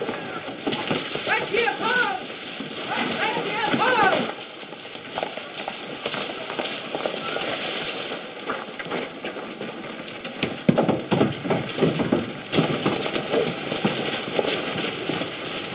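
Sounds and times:
indistinct voices murmuring: 0.0 - 0.6, 1.2 - 4.4
faint patter of outdoor background: 0.0 - 15.7
horse walking with clip-clop of hooves: 0.0 - 15.7.

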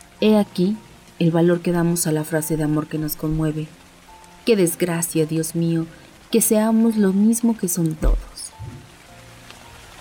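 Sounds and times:
rain falling: 0.0 - 9.9
speech: 0.2 - 3.8, 4.4 - 8.7
low thump: 8.6 - 8.9.

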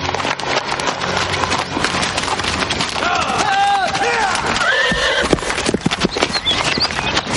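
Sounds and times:
horses galloping along a path: 0.0 - 7.3
horse whinnying: 2.9 - 7.0.

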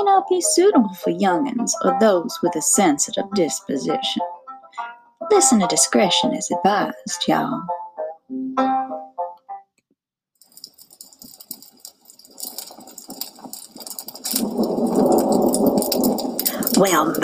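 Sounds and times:
speech: 0.0 - 8.8, 16.8 - 17.2
crackling rain patter in a thunderstorm: 10.4 - 17.2
loud deep roll of thunder: 12.4 - 17.2.

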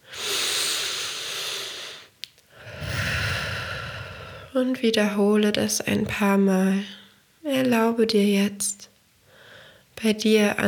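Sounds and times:
deep slow breathing in seated guided meditation: 0.0 - 4.6
speech: 4.6 - 8.9, 10.0 - 10.6.

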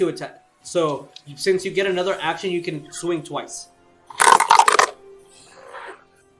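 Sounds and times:
speech: 0.0 - 4.3
dice rolled across a table for a tabletop role-playing game: 4.1 - 4.9.

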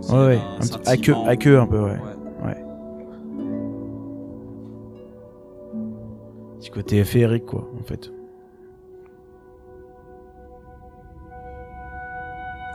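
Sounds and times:
electronic music with harp and voices: 0.0 - 8.4
speech: 0.1 - 2.1, 6.7 - 8.2.

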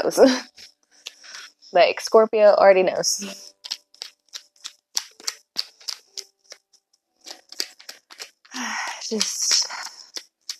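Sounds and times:
speech: 0.0 - 0.7, 1.7 - 3.5, 9.1 - 9.7
tarot cards being shuffled: 3.2 - 10.5.

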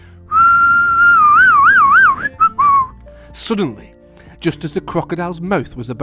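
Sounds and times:
loud shrill two-finger whistle warbling: 0.3 - 3.0
speech: 3.5 - 6.0.

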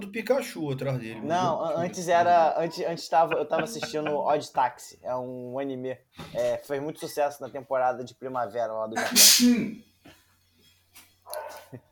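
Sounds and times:
speech: 0.0 - 9.9
laughter: 3.1 - 4.4
person sneezing: 9.0 - 9.8.

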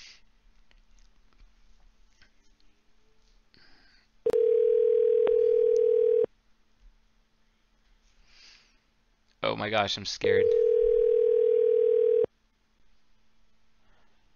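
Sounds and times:
phone call ringback tone: 4.3 - 6.3, 10.4 - 12.3
speech: 9.6 - 10.7.

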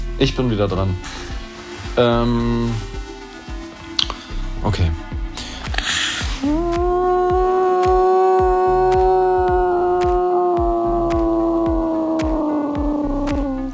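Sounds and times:
speech: 0.2 - 1.3, 2.0 - 2.9, 4.6 - 5.1, 6.4 - 7.3
repetitive throbbing pulse: 0.8 - 13.7
voice imitating a blue whale call: 6.4 - 13.7.

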